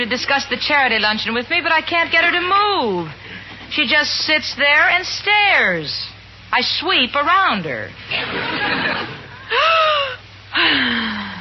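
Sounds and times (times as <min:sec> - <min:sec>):
speech: 0:00.0 - 0:09.8, 0:10.6 - 0:11.0
laughter: 0:08.1 - 0:10.2
loud deep breathing during yoga breathing exercises: 0:09.4 - 0:11.3.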